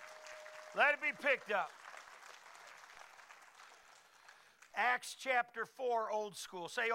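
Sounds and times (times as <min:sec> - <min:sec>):
church audience clapping loudly: 0:00.0 - 0:04.9
speech: 0:00.7 - 0:01.8, 0:04.8 - 0:06.9.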